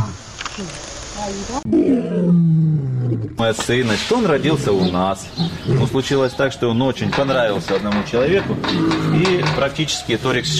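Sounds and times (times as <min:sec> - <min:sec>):
speech: 0:00.6 - 0:02.6, 0:03.2 - 0:10.5
young lion roaring: 0:01.7 - 0:03.4, 0:04.4 - 0:06.1, 0:08.4 - 0:09.6, 0:10.2 - 0:10.5.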